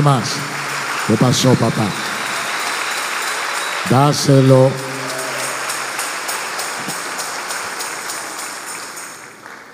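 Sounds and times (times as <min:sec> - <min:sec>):
speech: 0:00.0 - 0:00.5, 0:01.1 - 0:02.0, 0:03.8 - 0:04.9
audience applauding: 0:00.0 - 0:09.7.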